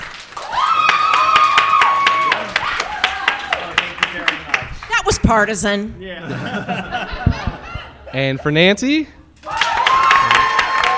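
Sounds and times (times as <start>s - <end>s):
small audience clapping in regular beats as an applause vote: 0.0s - 5.1s, 9.4s - 10.9s
speech: 5.3s - 7.3s, 8.1s - 9.2s
laughter: 6.2s - 8.8s.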